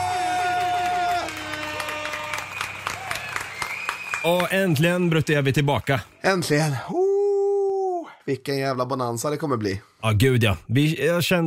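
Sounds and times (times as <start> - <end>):
crowd applause and cheering sound effect: 0.0 - 5.5
speech: 4.2 - 7.1, 8.3 - 11.4.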